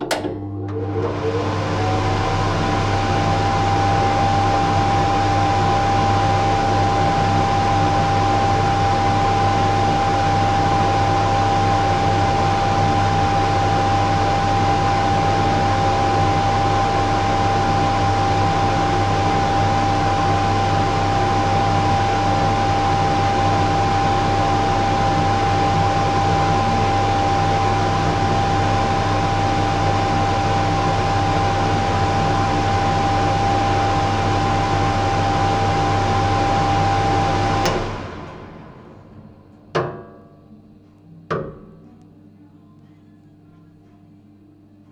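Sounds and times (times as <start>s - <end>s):
kitchen extractor fan: 0.0s - 43.6s.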